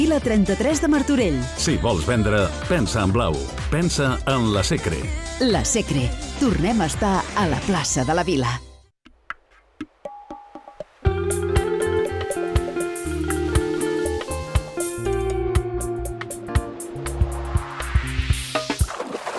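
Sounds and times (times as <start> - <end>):
speech: 0.0 - 8.7
bright musical sting with a steady bass: 11.1 - 18.5
water splashing and bubbling: 18.4 - 19.3.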